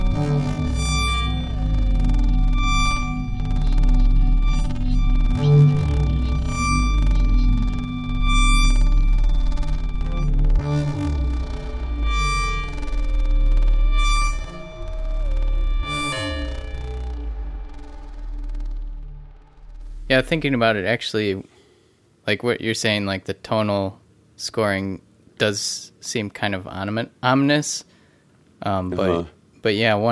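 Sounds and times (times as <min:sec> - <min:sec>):
atmospheric drone of steady ringing feedback tones: 0:00.0 - 0:20.8
rumbling distorted low end: 0:00.0 - 0:21.0
speech: 0:20.2 - 0:21.6, 0:22.3 - 0:27.9, 0:28.6 - 0:30.0.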